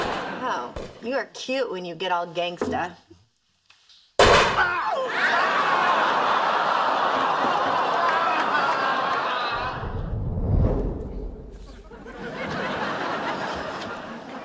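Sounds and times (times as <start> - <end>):
speech: 0.5 - 3.1, 4.6 - 5.6
gunshot: 4.2 - 4.6
laughter: 4.8 - 10.0, 11.6 - 14.4
noisy rumble: 9.6 - 12.4.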